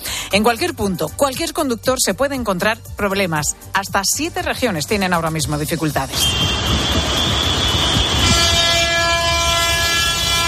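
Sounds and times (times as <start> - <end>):
speech: 0.3 - 6.6
long column of tractors rumbling along a major avenue during farmers' protests: 6.1 - 10.4
sustained horn blaring: 6.1 - 10.4.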